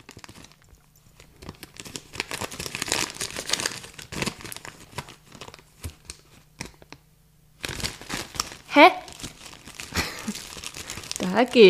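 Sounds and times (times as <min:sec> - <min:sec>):
plastic bag crinkling and being torn open: 0:00.0 - 0:07.0, 0:07.6 - 0:11.6
speech: 0:08.8 - 0:09.0, 0:11.4 - 0:11.6.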